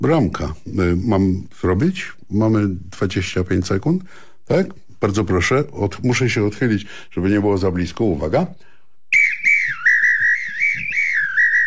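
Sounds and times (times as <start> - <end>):
speech: 0.0 - 8.7
referee-style apito whistle blown to signal goals: 9.1 - 11.6.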